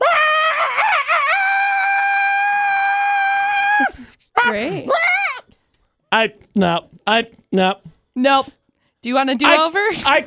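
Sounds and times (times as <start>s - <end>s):
person imitating a dog howling: 0.0s - 5.5s
speech: 3.8s - 5.0s, 6.2s - 10.2s.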